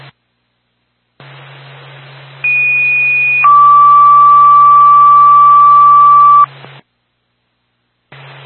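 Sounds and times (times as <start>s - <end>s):
hissing radio static: 1.2s - 4.2s, 5.0s - 6.8s, 8.1s - 8.4s
fire department dispatch paging tone for a fire alarm activation: 2.4s - 6.5s.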